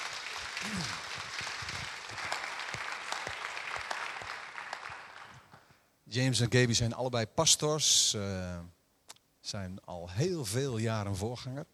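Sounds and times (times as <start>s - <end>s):
standing audience applause: 0.0s - 5.6s
speech: 0.6s - 1.0s, 6.1s - 8.8s, 9.5s - 11.7s.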